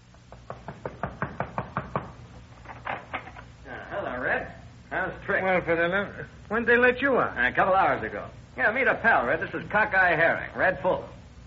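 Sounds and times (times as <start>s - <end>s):
sharp knocks on a wooden door: 0.3s - 2.2s
speech: 5.1s - 11.2s.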